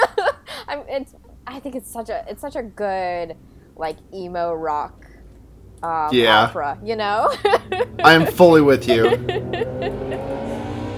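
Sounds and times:
laughter: 0.0s - 0.6s, 7.2s - 10.4s
speech: 0.9s - 5.0s, 5.8s - 10.4s
group of motorcycle engines revving and rumbling as bikes roll past: 7.7s - 10.9s.

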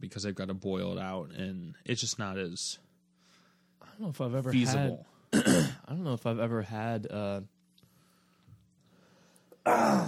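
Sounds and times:
speech: 0.0s - 2.9s, 3.9s - 7.6s, 9.6s - 10.0s
man clearing his throat after something catches in it: 5.3s - 5.8s.

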